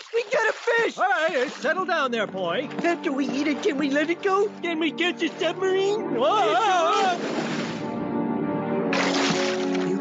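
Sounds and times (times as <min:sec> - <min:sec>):
heavy splash: 0:00.0 - 0:01.7, 0:06.9 - 0:07.9, 0:08.9 - 0:09.9
water sloshing from a small fishing boat capsizing: 0:00.0 - 0:01.8, 0:06.9 - 0:08.0, 0:08.9 - 0:09.9
speech: 0:00.5 - 0:07.4.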